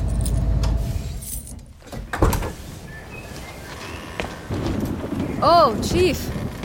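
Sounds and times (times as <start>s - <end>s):
keys jingling: 0.0s - 0.5s, 1.1s - 1.7s
low car engine rumble cutting off: 0.0s - 1.5s
door sliding: 0.0s - 5.4s
speech: 5.4s - 6.3s.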